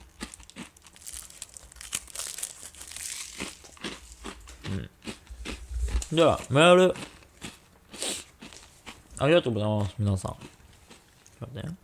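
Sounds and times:
snack packaging crinkling: 0.0 - 9.4
crunchy snacks being eaten: 0.0 - 11.4
speech: 4.7 - 5.0, 6.1 - 7.1, 9.2 - 10.6, 11.4 - 11.8.

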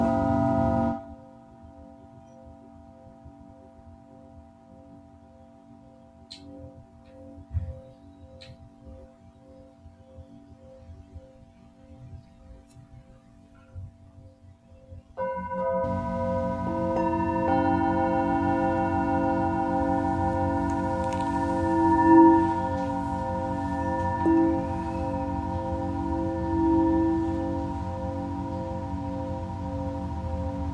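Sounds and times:
Tibetan singing bowl strike: 0.0 - 1.3, 15.2 - 30.7
Tibetan singing bowls ringing in sustained tones: 0.0 - 30.7.

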